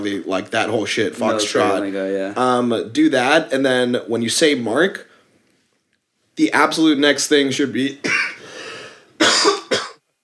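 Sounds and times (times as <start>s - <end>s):
speech: 0.0s - 5.1s, 6.4s - 8.2s
person coughing: 8.0s - 8.4s, 9.2s - 10.0s
breathy sound: 8.4s - 9.1s.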